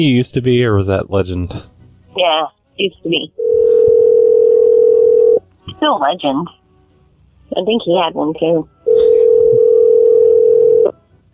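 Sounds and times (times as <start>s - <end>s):
speech: 0.0s - 3.9s, 5.7s - 6.6s, 7.5s - 8.8s
telephone dial tone: 3.4s - 5.4s, 9.2s - 10.9s.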